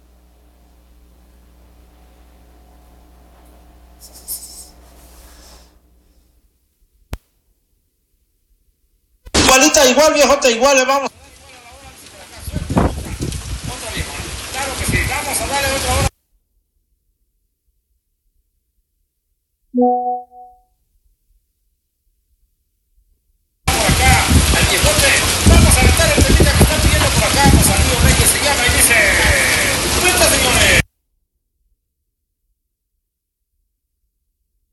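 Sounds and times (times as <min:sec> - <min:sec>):
heavy rain pouring down in the United States: 0:09.4 - 0:16.1, 0:23.7 - 0:30.8
speech: 0:09.8 - 0:11.1, 0:19.8 - 0:20.1
brief electronic tone: 0:19.8 - 0:20.6.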